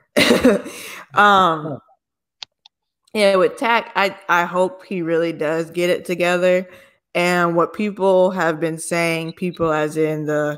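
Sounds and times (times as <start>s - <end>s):
person coughing after choking on water: 0.2s - 0.8s
speech: 0.2s - 1.9s, 3.1s - 10.5s.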